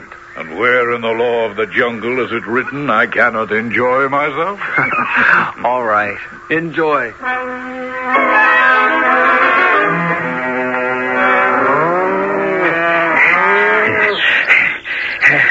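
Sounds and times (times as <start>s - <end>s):
speech: 0.4s - 8.4s
laughter: 4.5s - 5.8s, 11.2s - 15.4s
herd of cattle mooing while being driven: 8.4s - 14.3s.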